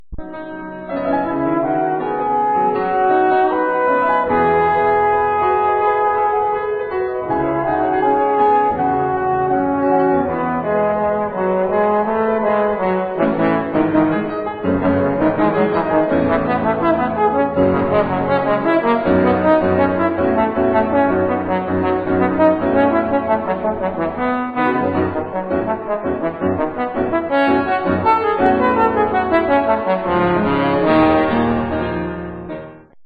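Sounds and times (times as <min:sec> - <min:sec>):
piano: 0:00.0 - 0:33.0
trombone: 0:01.0 - 0:32.0.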